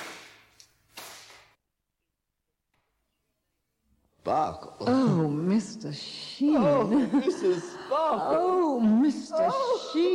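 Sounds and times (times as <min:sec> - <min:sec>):
whip cracking: 0:00.0 - 0:01.6
speech: 0:04.3 - 0:10.1
laughter: 0:06.4 - 0:10.1.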